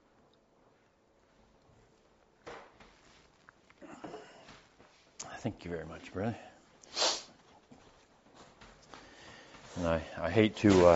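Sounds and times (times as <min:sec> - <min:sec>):
rustling: 0:01.2 - 0:03.8, 0:07.3 - 0:10.9
speech: 0:05.4 - 0:06.5, 0:09.8 - 0:10.9
loud nose blow into a microphone: 0:06.8 - 0:07.4.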